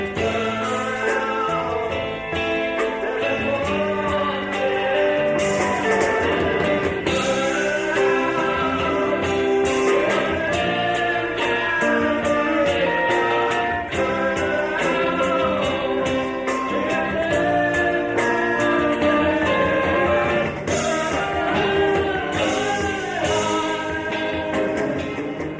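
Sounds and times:
full instrumental accompaniment: 0:00.0 - 0:25.5
man singing a theatrical melody in a college stage production: 0:00.0 - 0:25.5.

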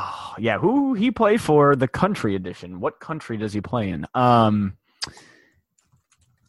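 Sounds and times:
speech: 0:00.4 - 0:05.3
typing on computer keyboards: 0:05.8 - 0:06.4.

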